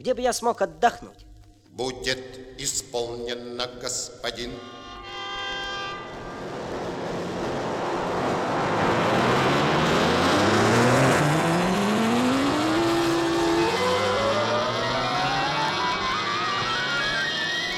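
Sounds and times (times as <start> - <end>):
speech: 0.0 - 4.9
dense traffic with several car engines passing and accelerating: 4.6 - 17.7.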